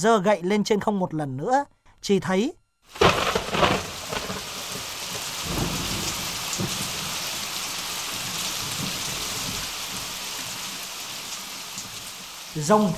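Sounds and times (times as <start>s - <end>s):
speech: 0.0s - 3.9s, 12.6s - 12.9s
heavy rain: 2.9s - 12.9s
deep thunder rumbling: 3.0s - 10.2s.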